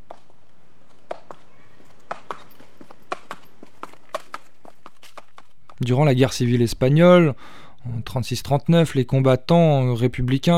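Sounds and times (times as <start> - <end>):
mule hooves clip-clopping on a path: 0.0 - 5.9
faint ambience: 0.0 - 9.2
speech: 5.8 - 10.5.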